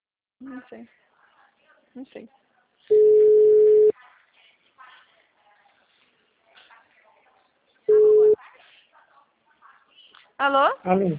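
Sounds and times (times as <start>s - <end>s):
speech: 0.4s - 1.1s, 2.0s - 3.4s, 10.4s - 11.1s
telephone busy tone beeps after a dropped call: 2.9s - 3.9s, 7.9s - 8.4s.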